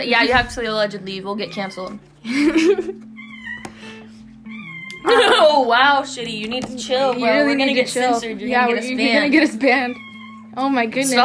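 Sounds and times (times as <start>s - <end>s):
speech: 0.0s - 3.1s, 5.1s - 10.0s, 10.6s - 11.2s
laughter: 2.2s - 3.0s, 5.0s - 5.7s
loud drawn-out cat meow: 3.2s - 3.8s, 4.5s - 5.2s, 9.8s - 10.6s.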